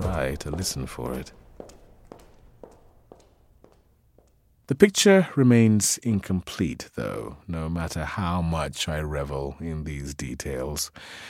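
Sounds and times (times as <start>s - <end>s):
woman's footsteps with crisp sharp taps: 0.0s - 4.7s
low steady background: 0.0s - 11.2s
speech: 0.2s - 1.4s, 4.7s - 11.2s.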